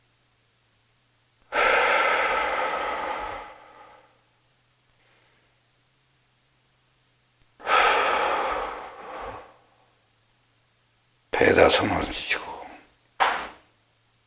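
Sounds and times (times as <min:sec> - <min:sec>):
person breathing out and in during a belly-breathing exercise: 0:01.6 - 0:04.1, 0:07.6 - 0:09.7
speech: 0:11.4 - 0:12.6.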